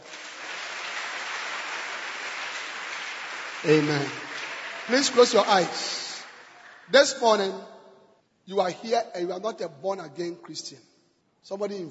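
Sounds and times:
large crowd applauding: 0.0s - 7.6s
speech: 3.6s - 4.2s, 4.9s - 6.0s, 6.9s - 7.7s, 8.5s - 11.8s.

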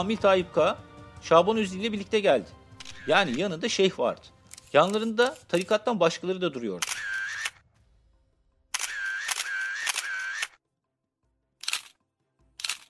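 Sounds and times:
speech: 0.0s - 7.2s
camera shutter clicks in a newspaper office: 2.8s - 3.4s, 6.8s - 7.6s, 8.8s - 10.6s, 11.6s - 11.9s, 12.6s - 12.8s.

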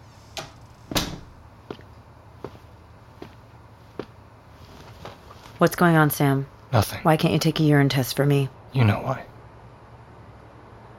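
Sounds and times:
door swinging shut with a solid thud: 0.4s - 1.4s
speech: 5.6s - 9.3s.

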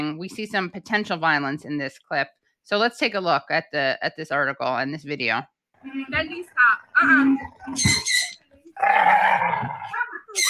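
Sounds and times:
speech: 0.0s - 10.4s
bulldog throaty growl: 8.8s - 10.1s.

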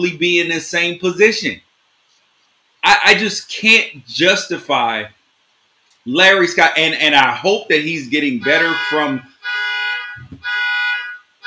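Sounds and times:
speech: 0.0s - 1.7s, 2.8s - 5.2s, 6.0s - 9.3s
neighbour's car alarm going off: 8.4s - 11.4s.

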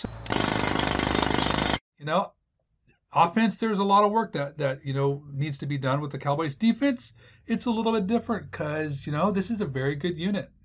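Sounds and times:
jackhammer pounding: 0.0s - 1.8s
speech: 2.0s - 2.4s, 3.1s - 10.6s.

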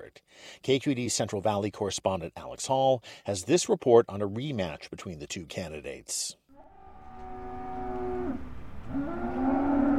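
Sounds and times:
speech: 0.1s - 6.4s
cattle mooing at a stockyard auction in Hanford, California: 6.6s - 9.9s.

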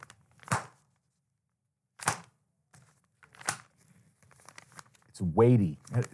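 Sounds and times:
paper envelope crinkling and rustling: 0.0s - 0.9s, 2.0s - 5.2s, 5.8s - 6.1s
speech: 5.2s - 6.1s.

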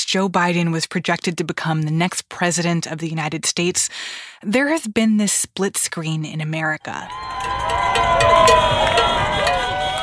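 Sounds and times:
speech: 0.1s - 9.1s
lively street crowd cheering and shouting: 7.0s - 10.0s
car horns honking: 7.3s - 10.0s.

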